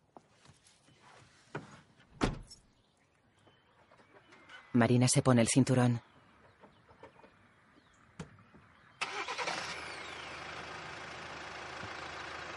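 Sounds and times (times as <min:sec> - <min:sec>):
door slamming: 0:02.2 - 0:02.6
speech: 0:04.8 - 0:06.1
minivan engine cranking, revving and accelerating: 0:09.0 - 0:12.5.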